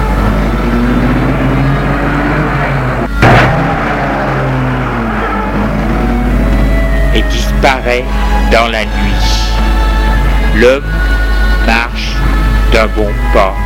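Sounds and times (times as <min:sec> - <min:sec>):
car engine rumbling as the car drives away: 0:00.0 - 0:13.6
sharp thump: 0:03.2 - 0:04.0
speech: 0:07.8 - 0:09.3, 0:10.6 - 0:10.9, 0:12.8 - 0:13.6.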